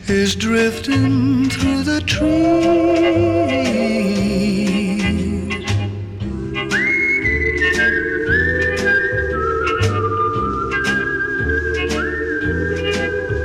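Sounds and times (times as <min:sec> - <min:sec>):
steady rhythmic backing track: 0:00.0 - 0:13.4
speech: 0:00.1 - 0:04.8
clear bright whistled melody: 0:00.5 - 0:13.4.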